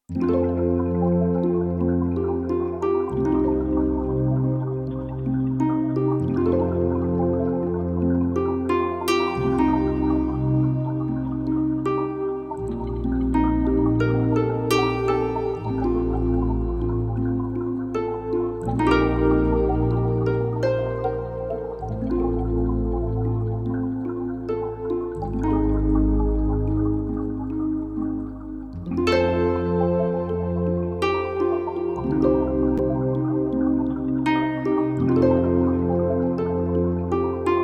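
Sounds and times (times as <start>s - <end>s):
cave harp synth patch: 0.0s - 37.6s.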